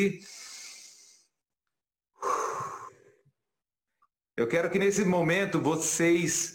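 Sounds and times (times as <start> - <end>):
speech: 0.0 - 0.4, 4.4 - 6.5
deep breath in through the nose: 0.2 - 1.4, 2.2 - 3.2
rushing exhale like a sigh: 0.2 - 1.4, 2.2 - 3.2.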